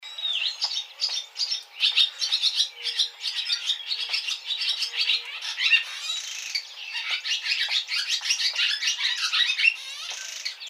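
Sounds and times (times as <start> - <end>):
barn swallow calling: 0.1 - 10.6.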